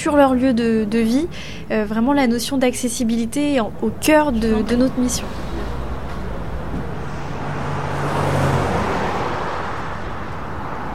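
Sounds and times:
speech: 0.0 - 5.5
truck engine idling and rumbling: 0.0 - 7.6
broad road-like noise: 0.0 - 10.9.

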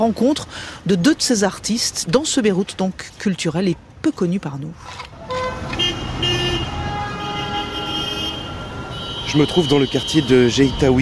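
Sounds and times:
speech: 0.0 - 5.1, 9.3 - 11.0
dense rush-hour city traffic in Beirut: 0.0 - 11.0
car horns tooting and blaring: 5.1 - 10.8.

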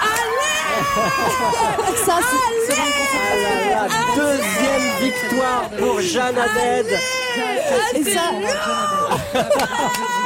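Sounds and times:
woman crying out with joy at a music awards ceremony: 0.0 - 3.2
excited chatter: 0.0 - 10.2
laughter: 0.0 - 10.2
speech: 1.0 - 10.2.

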